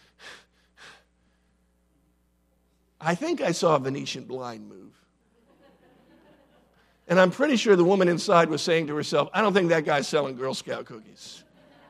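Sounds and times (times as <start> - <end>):
heavy breathing after cycling: 0.0 - 1.6
speech: 3.0 - 5.0, 7.1 - 11.5
laughter: 5.3 - 6.9, 11.2 - 11.8.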